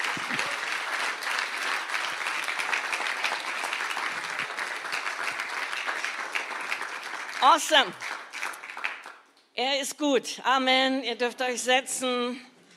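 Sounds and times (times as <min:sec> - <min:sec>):
audience applauding: 0:00.0 - 0:09.3
speech: 0:07.4 - 0:08.2, 0:09.6 - 0:12.5.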